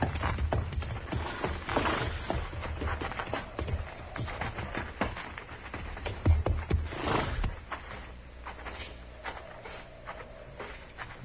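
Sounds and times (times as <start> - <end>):
horses' hooves clopping on a hard floor into barn stalls: 0.0 - 11.2.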